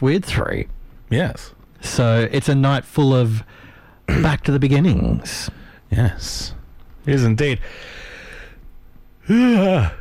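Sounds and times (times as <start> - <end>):
speech: 0.0 - 8.1, 9.3 - 10.0
loud voiced yawn: 9.2 - 10.0.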